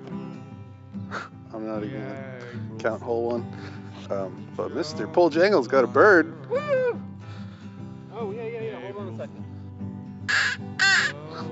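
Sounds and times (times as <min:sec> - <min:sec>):
speech: 0:01.1 - 0:07.1
person on a golf course imitating crow caws: 0:10.3 - 0:11.5.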